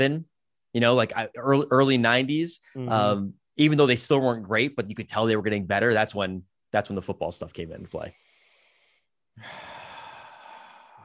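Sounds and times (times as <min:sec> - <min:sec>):
speech: 0:00.0 - 0:08.2, 0:09.4 - 0:09.7
breathing right against a microphone: 0:07.8 - 0:11.0.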